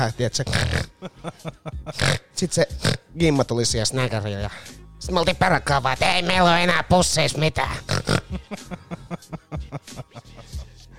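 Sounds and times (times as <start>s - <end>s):
speech: 0.0s - 7.9s
voice imitating pig with snorting grunts: 0.4s - 3.0s, 7.7s - 8.6s
laughter: 0.7s - 2.1s, 8.2s - 10.9s.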